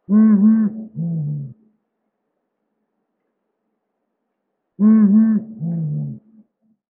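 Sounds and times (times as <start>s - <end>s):
Blakiston's fish owl calling: 0.1s - 1.6s, 4.8s - 6.2s.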